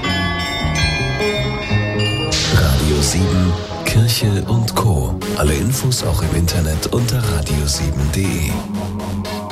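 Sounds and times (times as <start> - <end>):
historic glockenspiel chimes in Esslingen: 0.0 - 3.7
speech: 3.1 - 9.4.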